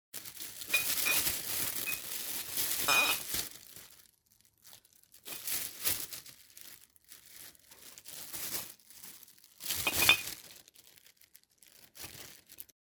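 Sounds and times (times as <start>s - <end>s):
bottles clinking in a bag: 0.2s - 3.5s, 5.3s - 5.8s, 9.6s - 10.4s.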